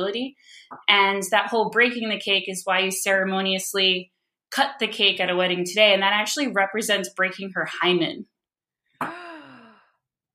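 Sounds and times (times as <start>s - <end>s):
speech: 0.0s - 8.3s
voiced gasp of surprise: 9.0s - 10.0s.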